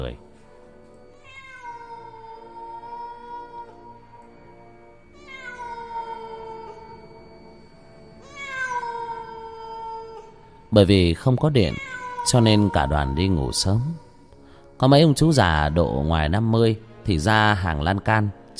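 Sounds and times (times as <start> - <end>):
speech: 0.0 - 0.3, 10.7 - 14.0, 14.8 - 18.5
stray cats wailing at night in a cemetery: 1.1 - 14.3.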